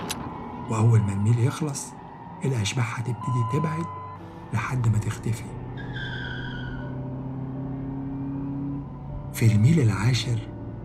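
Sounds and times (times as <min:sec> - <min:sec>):
car tires screeching: 0:00.0 - 0:10.5
car engine roaring while accelerating: 0:00.0 - 0:10.8
speech: 0:00.7 - 0:05.6, 0:09.4 - 0:10.5.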